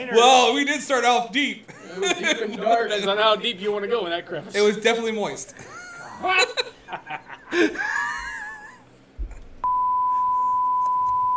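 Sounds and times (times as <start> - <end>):
speech: 0.0 - 8.2
person laughing and gasping: 5.6 - 9.5
loud steady single-pitch censor bleep: 9.6 - 11.3.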